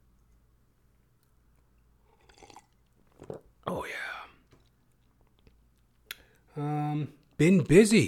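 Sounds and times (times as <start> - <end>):
person sipping water: 1.6 - 6.4
person swallowing water: 2.2 - 3.5
speech: 6.6 - 8.0.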